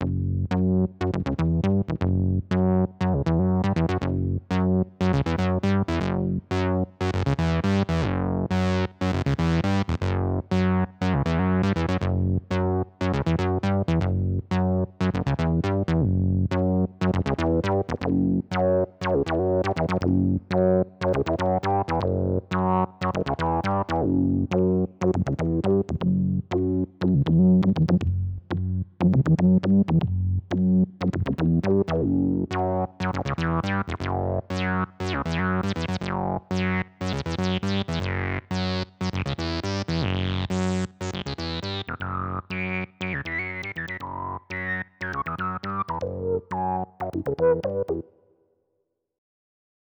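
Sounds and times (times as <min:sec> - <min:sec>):
evolving lowpass synth bass on a Clavia Nord Wave: 0:00.0 - 0:48.1.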